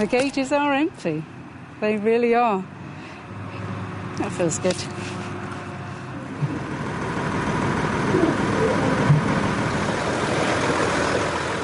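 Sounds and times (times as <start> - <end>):
speech: 0.0 - 2.8, 4.2 - 5.3
car driving to the airport, engine and tyre drone: 4.4 - 11.6.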